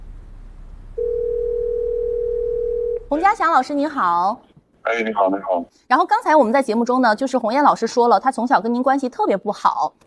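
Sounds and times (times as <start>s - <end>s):
faint low hum: 0.0s - 5.9s
single-pitched telephone ringback tone: 1.0s - 3.0s
speech: 3.1s - 10.0s.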